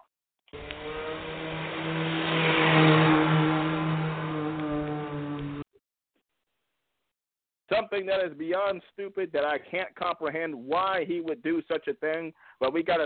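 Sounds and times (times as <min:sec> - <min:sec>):
car engine roaring and revving as the vehicle speeds along: 0:00.6 - 0:05.6
speech: 0:07.8 - 0:13.0.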